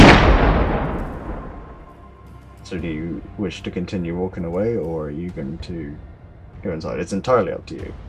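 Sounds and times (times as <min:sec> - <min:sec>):
gunshot inside a building with rumbling echo: 0:00.0 - 0:01.9
speech: 0:02.7 - 0:08.0.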